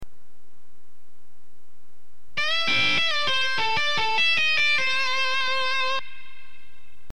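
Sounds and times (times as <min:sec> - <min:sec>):
guitar playing blues minor pentatonic exercise: 0:02.4 - 0:06.8.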